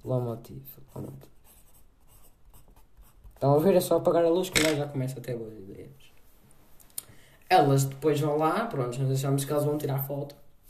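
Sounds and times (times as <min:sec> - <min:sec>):
speech: 0:00.1 - 0:01.4, 0:03.4 - 0:06.1, 0:07.5 - 0:10.4
pen scratching on paper: 0:00.9 - 0:03.4.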